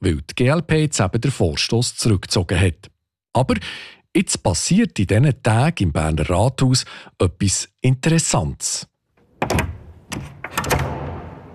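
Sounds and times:
speech: 0.0s - 10.7s
door latch clunk: 9.2s - 11.5s
rattling thuds: 9.3s - 11.5s.

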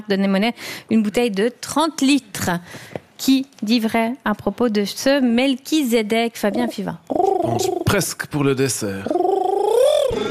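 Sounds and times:
speech: 0.0s - 9.2s
man imitating pigeon cooing: 6.5s - 8.0s, 9.0s - 10.2s.

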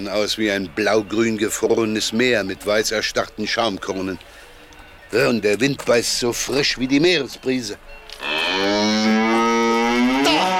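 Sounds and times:
speech: 0.0s - 4.4s, 5.1s - 8.7s
cow mooing from grazing cattle: 8.2s - 10.5s.

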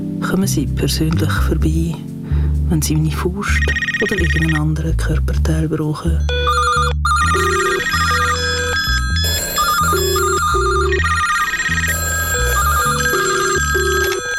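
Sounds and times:
speech: 0.3s - 2.1s, 2.7s - 6.7s
telephone ringing with electronic melody: 3.6s - 4.6s, 6.3s - 14.3s.

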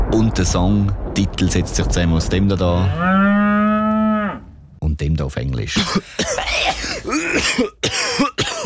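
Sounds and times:
speech: 0.1s - 3.3s, 5.0s - 8.3s
person coughing in harsh bursts: 5.8s - 8.6s.

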